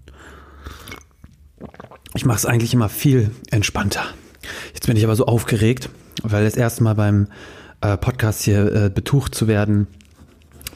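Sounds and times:
coffee slurped from a cup: 0.6 - 2.4, 10.0 - 10.7
speech: 2.2 - 4.2, 4.9 - 10.0.

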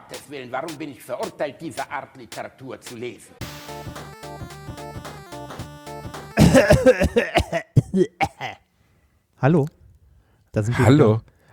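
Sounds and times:
speech: 0.3 - 4.5, 6.6 - 8.6, 9.4 - 9.8, 10.6 - 11.5
harsh throaty fit of coughing: 6.4 - 8.6.

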